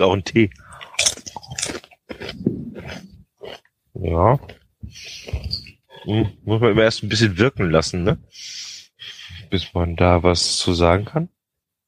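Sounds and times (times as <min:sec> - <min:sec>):
speech: 0:00.0 - 0:01.2, 0:04.0 - 0:05.4, 0:06.0 - 0:08.7, 0:09.5 - 0:11.4
someone biting and chewing a rosemary snack: 0:00.7 - 0:05.4.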